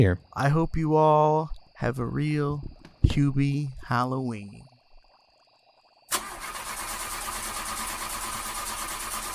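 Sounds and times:
speech: 0:00.0 - 0:04.7
car engine cranking without starting: 0:06.1 - 0:09.3.

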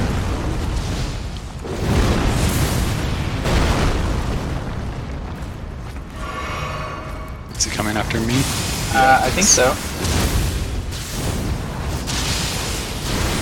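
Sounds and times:
mine exploding after hitting a pole in a video game: 0:00.0 - 0:13.4
speech: 0:09.0 - 0:09.9.

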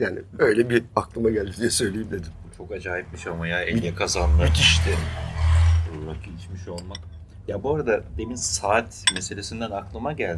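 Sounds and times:
speech: 0:00.0 - 0:05.3, 0:05.9 - 0:10.3
dishes and cutlery clinking in a busy tavern: 0:06.7 - 0:07.2, 0:08.2 - 0:09.5.

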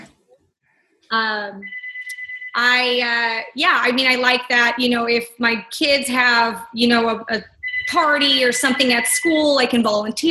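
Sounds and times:
speech: 0:01.1 - 0:01.8, 0:02.6 - 0:10.3
phone ringing with bright electronic ringtone: 0:01.6 - 0:02.7, 0:07.6 - 0:09.3.

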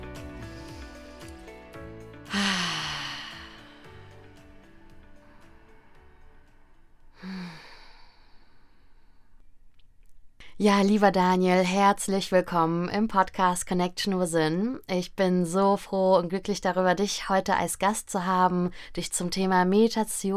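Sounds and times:
quiet sustained music: 0:00.0 - 0:08.6
slow deep breaths: 0:00.4 - 0:09.6
speech: 0:10.6 - 0:20.3.

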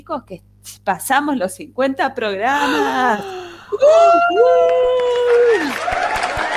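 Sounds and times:
speech: 0:00.0 - 0:06.2
loud sustained high-pitched scream: 0:03.8 - 0:05.7
people clapping: 0:04.1 - 0:06.5.

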